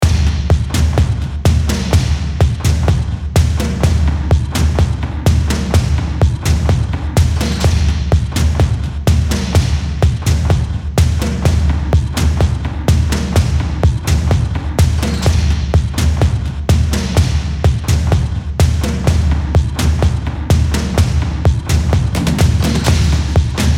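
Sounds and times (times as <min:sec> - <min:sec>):
percussion: 0:00.0 - 0:23.7.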